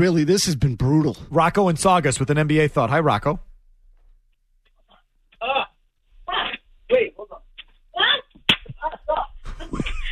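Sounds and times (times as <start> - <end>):
speech: 0.0 - 3.5
sharp loud slap: 8.4 - 8.8
laughter: 8.8 - 10.0.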